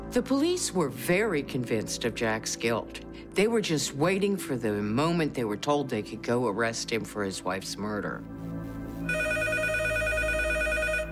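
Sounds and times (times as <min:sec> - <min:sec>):
speech: 0:00.1 - 0:08.4
telephone ringing with an electronic trill: 0:09.1 - 0:11.1.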